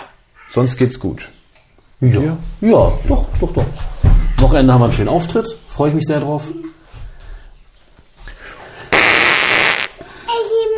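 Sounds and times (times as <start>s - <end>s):
speech: 0.5s - 1.4s, 2.0s - 6.7s
movement: 1.5s - 9.0s
child blowing a loud sputtering raspberry into a microphone: 8.9s - 10.0s.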